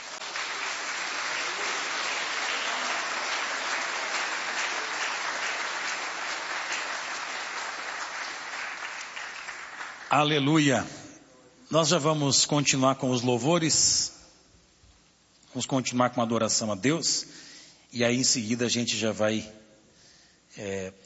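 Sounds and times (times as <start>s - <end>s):
audience applauding: 0.0s - 10.4s
speech: 10.1s - 11.0s, 11.7s - 14.2s, 15.6s - 19.6s, 20.5s - 21.0s.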